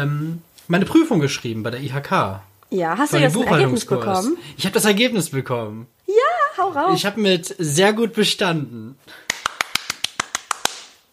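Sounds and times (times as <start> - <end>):
speech: 0.0 - 6.0, 6.6 - 9.2
faint room hush: 0.0 - 11.1
one person clapping hands: 9.1 - 11.1.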